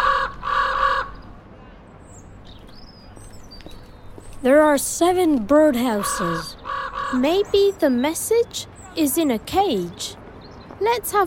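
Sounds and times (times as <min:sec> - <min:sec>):
raven croaking: 0:00.0 - 0:01.2, 0:05.8 - 0:07.5
speech: 0:04.4 - 0:10.2, 0:10.8 - 0:11.2.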